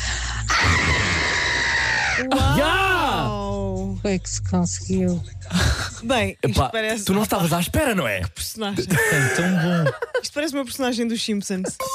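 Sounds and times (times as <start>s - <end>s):
person attempting a big scream: 0.5s - 3.5s
speech: 2.2s - 3.0s, 4.0s - 11.9s
laughter: 8.7s - 10.4s.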